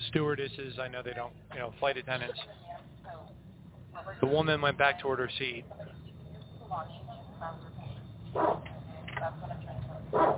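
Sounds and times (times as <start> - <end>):
low droning hum: 0.0 - 10.3
speech: 0.1 - 3.3, 4.0 - 6.0, 6.7 - 7.7, 8.4 - 10.3
large dog barking: 8.3 - 8.7, 10.1 - 10.3.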